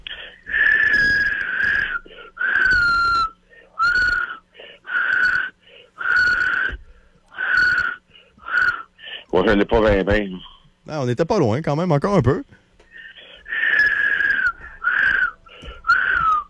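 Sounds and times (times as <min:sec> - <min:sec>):
person attempting to whistle: 0:00.2 - 0:08.9, 0:13.5 - 0:16.4
speech: 0:09.4 - 0:12.5.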